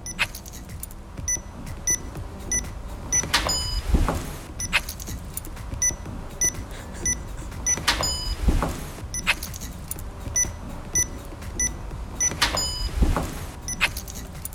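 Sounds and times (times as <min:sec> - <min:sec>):
door entry keypad beeps as a code is typed: 0:01.3 - 0:05.2, 0:05.8 - 0:09.4, 0:10.4 - 0:14.3.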